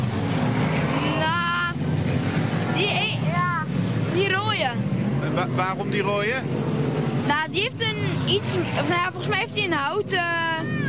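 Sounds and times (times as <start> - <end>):
small stock cars roaring past: 0.0 - 10.8
speech: 5.4 - 6.6, 7.4 - 10.7.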